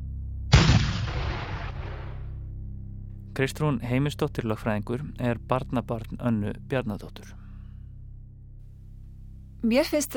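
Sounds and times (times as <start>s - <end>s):
cannon shot from a 21-gun salute at Government House: 0.5s - 2.3s
speech: 3.4s - 7.4s, 9.6s - 10.1s.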